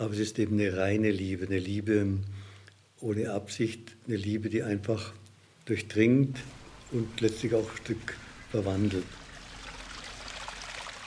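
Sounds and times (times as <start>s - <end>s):
speech: 0.0s - 9.2s
fountain splashing water at Münsterschwarzach Abbey in high summer: 6.5s - 11.0s.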